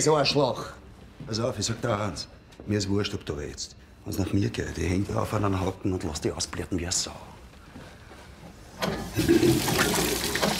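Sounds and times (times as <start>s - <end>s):
speech: 0.0s - 7.4s, 8.8s - 10.1s
running water gushing: 9.2s - 10.5s.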